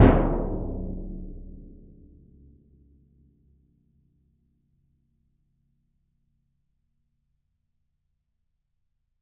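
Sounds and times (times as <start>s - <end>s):
bass drum hit decaying: 0.0s - 2.0s.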